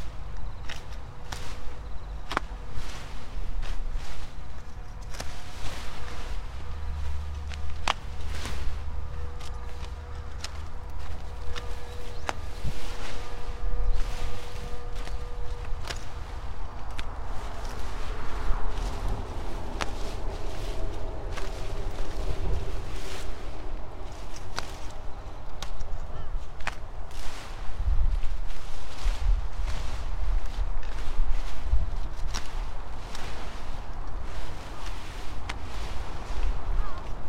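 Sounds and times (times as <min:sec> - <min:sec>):
brief tonal drone: 0:00.0 - 0:26.2
footsteps shuffling in a garden: 0:00.0 - 0:37.2
low steady hum: 0:00.0 - 0:37.2
overgrown sweet potato vines being cut back at the base: 0:00.0 - 0:37.2
sweet potato leaves rustling: 0:00.0 - 0:37.2.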